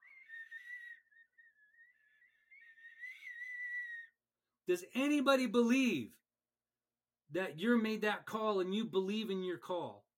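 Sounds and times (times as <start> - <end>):
weak referee whistle blow: 0.0 - 4.2
speech: 4.7 - 6.2, 7.3 - 10.0.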